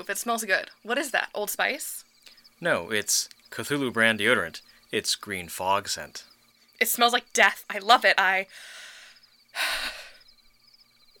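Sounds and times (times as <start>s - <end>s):
speech: 0.0s - 8.8s, 9.6s - 10.0s
heavy gasping breathing: 8.5s - 10.2s.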